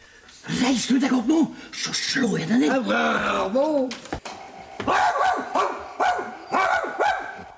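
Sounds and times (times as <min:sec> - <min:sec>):
speech: 0:00.7 - 0:04.2
dog barking hoarsely: 0:04.9 - 0:07.4.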